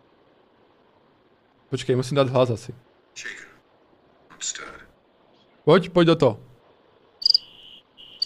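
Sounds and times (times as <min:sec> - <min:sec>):
speech: 0:01.7 - 0:03.5, 0:05.6 - 0:06.5
cricket chirping in short trilling bursts: 0:07.2 - 0:08.2.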